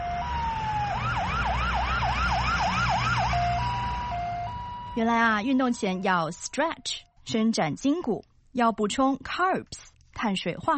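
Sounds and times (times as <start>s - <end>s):
low road rumble: 0.0s - 6.4s
ambulance siren: 0.0s - 7.1s
speech: 5.0s - 10.7s.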